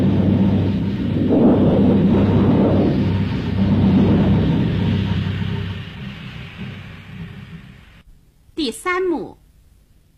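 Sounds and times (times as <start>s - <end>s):
rushing wind sound effect in a radio drama: 0.0s - 8.0s
thunder rumbling sound effect in a radio drama: 0.0s - 8.1s.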